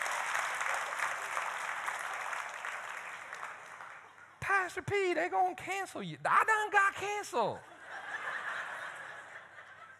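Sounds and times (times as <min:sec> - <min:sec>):
audience clapping: 0:00.0 - 0:04.4
speech: 0:04.5 - 0:07.7
laughter: 0:07.6 - 0:09.9.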